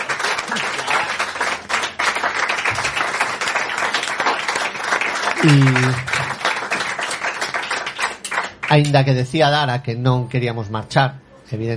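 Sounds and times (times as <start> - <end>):
crowd applause: 0.0 - 8.9
speech: 5.4 - 6.1, 8.7 - 11.7.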